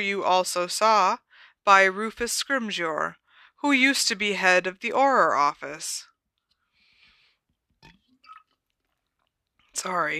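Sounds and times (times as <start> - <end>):
speech: 0.0 - 6.1, 9.8 - 10.1
person swallowing a drink of water: 7.8 - 8.6.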